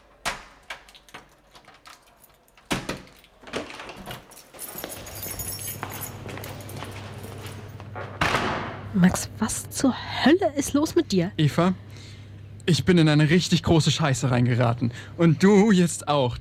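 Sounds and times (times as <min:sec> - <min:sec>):
door swinging open with a solid clunk: 0:00.0 - 0:08.9
steady low mechanical hum: 0:00.0 - 0:16.3
keys jingling and clicking in a lock: 0:00.7 - 0:08.0
speech: 0:09.0 - 0:12.1, 0:12.7 - 0:16.3.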